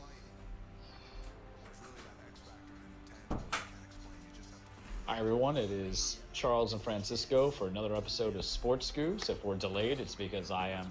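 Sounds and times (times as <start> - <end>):
door shutting: 3.3 - 3.9
speech: 5.1 - 10.8.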